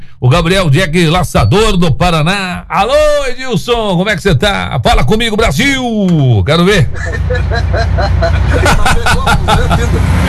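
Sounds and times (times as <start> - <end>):
speech: 0.2 - 10.2
heavy vehicle rumbling along the road: 6.8 - 10.2
several voices chattering and laughing: 6.9 - 10.2.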